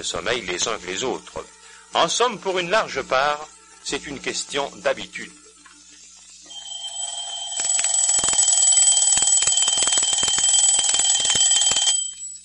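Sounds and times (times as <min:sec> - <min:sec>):
speech: 0:00.0 - 0:05.4
alarm clock with metallic bell ringing: 0:06.5 - 0:12.4.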